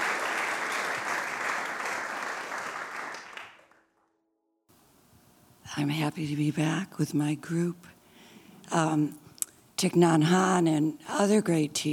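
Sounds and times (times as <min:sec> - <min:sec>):
audience applause welcoming a speaker to a meditation program: 0:00.0 - 0:03.9
speech: 0:05.8 - 0:08.0, 0:08.7 - 0:09.2, 0:09.8 - 0:11.9.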